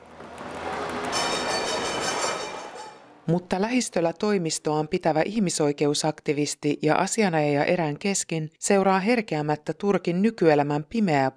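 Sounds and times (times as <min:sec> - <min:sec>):
tram in Istanbul rumbling past along its old route: 0:00.0 - 0:04.2
faint tram rail squeal: 0:00.5 - 0:03.2
speech: 0:03.3 - 0:11.3.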